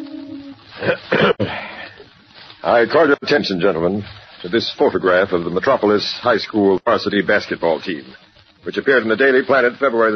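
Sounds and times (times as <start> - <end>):
man clearing his throat: 0.8 - 1.6
speech: 0.8 - 1.6, 2.6 - 10.1.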